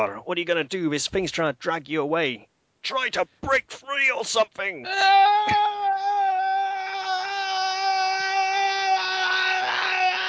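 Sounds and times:
speech: 0:00.0 - 0:05.7
person screaming: 0:04.8 - 0:10.2.

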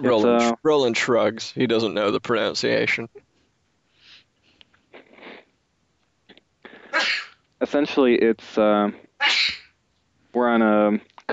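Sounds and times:
speech: 0:00.0 - 0:03.2, 0:07.0 - 0:09.5, 0:10.3 - 0:11.1
person sneezing: 0:06.7 - 0:07.4, 0:09.2 - 0:09.7.

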